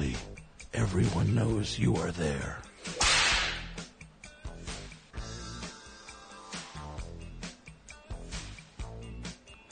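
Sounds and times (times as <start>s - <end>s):
steady music: 0.0s - 9.6s
speech: 0.8s - 3.0s
whip cracking: 2.9s - 3.8s.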